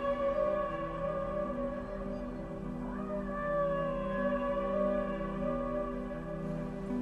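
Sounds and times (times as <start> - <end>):
low rumbling background: 0.0 - 7.0
whale vocalizations: 0.0 - 7.0.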